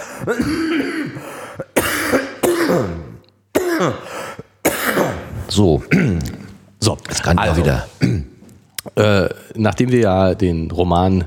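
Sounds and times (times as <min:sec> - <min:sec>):
person coughing: 0:00.0 - 0:06.5, 0:07.9 - 0:08.4
person clearing throat: 0:00.1 - 0:06.5, 0:07.9 - 0:08.4
speech: 0:00.2 - 0:01.6, 0:05.6 - 0:08.2, 0:09.0 - 0:11.2.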